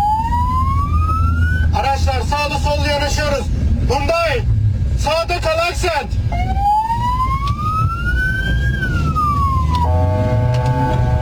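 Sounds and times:
ambulance siren wailing: 0.0s - 2.1s, 6.3s - 11.2s
engine and road noise: 0.0s - 11.2s.

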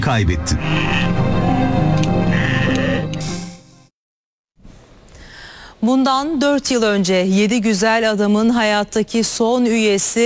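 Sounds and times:
speech: 0.1s - 1.4s, 5.8s - 10.2s
lambs bleating during shearing: 0.6s - 1.2s, 2.3s - 3.1s.

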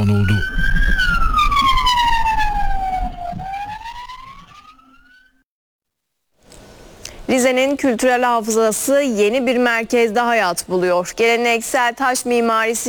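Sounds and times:
emergency vehicle siren wailing: 0.0s - 5.4s
speech: 7.3s - 12.8s.

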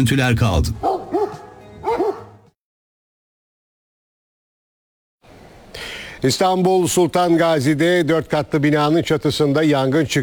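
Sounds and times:
speech: 0.0s - 0.9s, 6.2s - 10.2s
dogs barking at bears: 0.8s - 2.5s.

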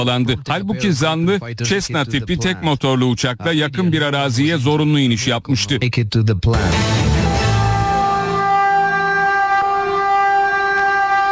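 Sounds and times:
speech: 0.0s - 7.0s
high-speed train horn blast: 6.6s - 11.3s.

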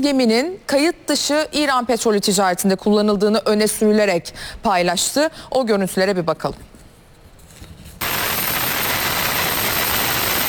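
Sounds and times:
speech: 0.0s - 6.7s
helicopter hovering over a ship deck: 8.0s - 10.4s.

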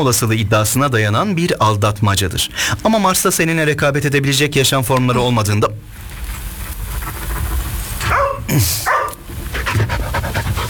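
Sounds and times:
speech: 0.0s - 6.0s, 8.5s - 9.0s
dog panting: 7.1s - 10.6s.

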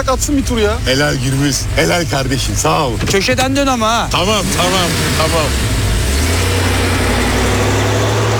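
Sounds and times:
speech: 0.0s - 6.8s
car engine running: 0.0s - 8.3s.

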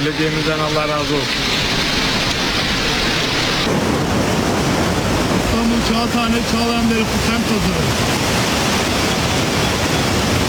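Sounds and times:
speech: 0.0s - 1.5s, 3.6s - 4.2s, 5.9s - 8.5s
heavy downpour pounding a flooded city street in Istanbul: 0.0s - 10.4s.

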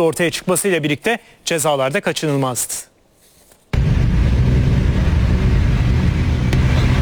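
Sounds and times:
speech: 0.0s - 2.9s
unplated motorcycle engine roaring in traffic on the Çekmeköy-Şile road in Istanbul: 3.8s - 7.0s.

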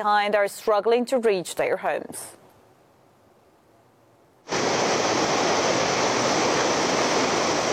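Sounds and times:
speech: 0.0s - 2.4s
rushing water of the swollen stormy Trishuli River in Nepal after flash floods: 4.5s - 7.7s.

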